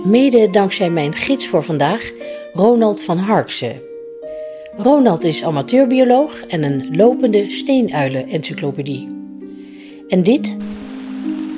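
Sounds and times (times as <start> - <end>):
speech: 0.1 - 3.9, 4.8 - 9.2, 10.1 - 10.8
steady rain pouring outdoors in Winterswijk: 10.6 - 11.5.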